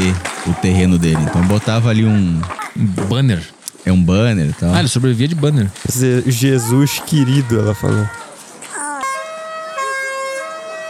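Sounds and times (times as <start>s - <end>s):
speech: 0.1s - 8.2s
emergency siren with a cheerful tuneful tone: 9.0s - 10.8s.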